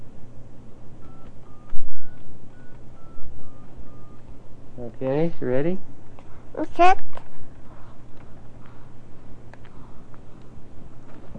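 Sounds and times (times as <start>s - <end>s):
low steady hum: 0.0s - 11.3s
telephone keypad beeps as a number is dialed: 1.0s - 4.3s
speech: 4.8s - 6.0s, 6.6s - 7.1s.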